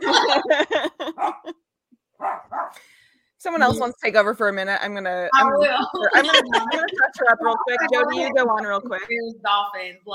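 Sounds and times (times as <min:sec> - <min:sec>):
laughter: 0:00.0 - 0:01.6, 0:05.4 - 0:09.1
pet dog barking: 0:01.1 - 0:01.5, 0:02.2 - 0:02.8
speech: 0:03.4 - 0:10.1.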